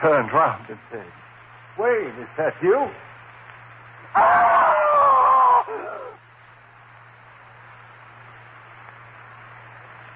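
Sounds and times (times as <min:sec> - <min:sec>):
speech: 0:00.0 - 0:03.1, 0:04.1 - 0:04.5
person screaming in terror: 0:04.1 - 0:06.2.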